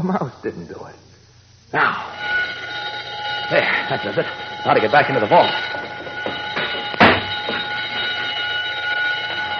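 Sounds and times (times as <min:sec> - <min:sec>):
speech: 0:00.0 - 0:01.1, 0:01.7 - 0:02.4, 0:03.5 - 0:05.9
burglar alarm wired along the bottom of a door ringing: 0:01.9 - 0:09.5
sharp clunk: 0:06.2 - 0:07.6.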